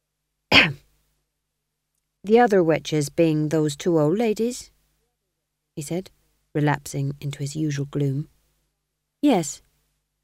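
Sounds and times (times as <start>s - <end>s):
man coughing: 0.5s - 0.8s
speech: 2.2s - 4.7s, 5.8s - 8.3s, 9.2s - 9.7s.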